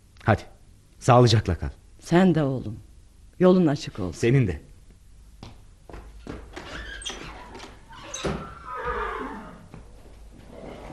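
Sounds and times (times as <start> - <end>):
speech: 0.2 - 4.7
horse hooves shuffling: 5.4 - 10.9
horse whinnying with a long wavering neigh: 7.9 - 9.8.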